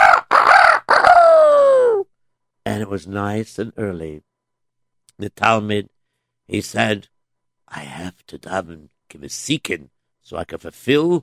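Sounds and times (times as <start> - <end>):
rooster crowing: 0.0 - 2.0
speech: 2.7 - 4.3, 5.2 - 5.9, 6.5 - 7.1, 7.7 - 11.2.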